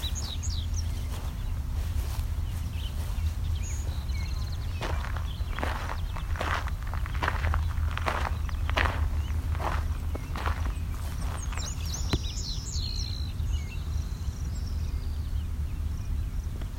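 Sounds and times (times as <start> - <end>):
crunching footsteps: 0.0 - 12.4
Savannah sparrow calls: 0.0 - 16.7
steady low outdoor rumble: 0.0 - 16.7.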